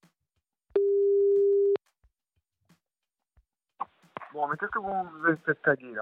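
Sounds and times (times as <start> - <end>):
telephone busy tone after a hang-up: 0.8 - 1.8
speech: 4.4 - 5.9.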